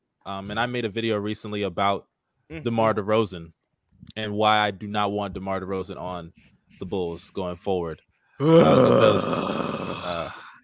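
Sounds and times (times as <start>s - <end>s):
speech: 0.2s - 10.4s
person yawning with a groaning exhale: 8.4s - 10.6s.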